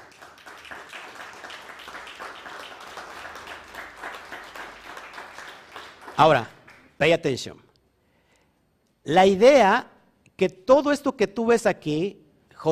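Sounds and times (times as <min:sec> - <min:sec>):
crowd applauding with many hands clapping: 0:00.0 - 0:07.0
speech: 0:06.2 - 0:07.6, 0:09.0 - 0:12.6.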